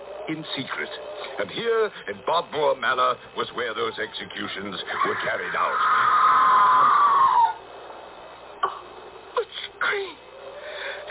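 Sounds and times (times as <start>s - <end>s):
speech: 0.3s - 6.2s
distant scream: 3.9s - 7.8s.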